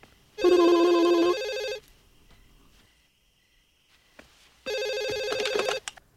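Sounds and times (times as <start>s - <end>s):
telephone ringing in long buzzy bursts: 0.4s - 1.8s, 4.7s - 5.9s.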